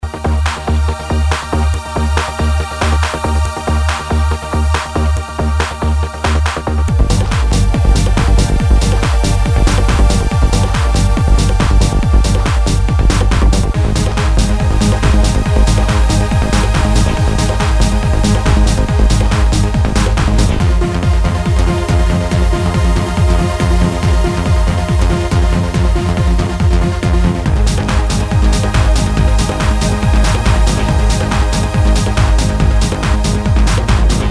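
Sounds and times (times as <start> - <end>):
techno trance music: 0.0 - 34.3.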